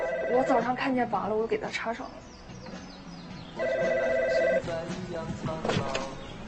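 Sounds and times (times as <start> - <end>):
landline telephone ringing with an electronic trill: 0.0 - 0.8, 3.6 - 4.7
speech: 0.3 - 2.4, 4.6 - 6.2.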